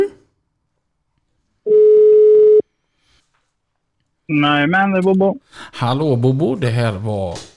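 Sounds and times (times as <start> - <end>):
telephone ringback tone during an outgoing call: 1.7 - 2.6
speech: 4.3 - 7.5.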